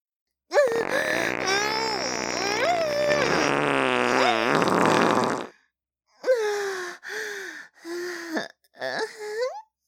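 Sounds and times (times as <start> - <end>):
short breathy sighs: 0.6 - 3.2, 6.2 - 9.3
person moaning: 0.6 - 3.5
long loud sputtering fart: 0.6 - 5.5.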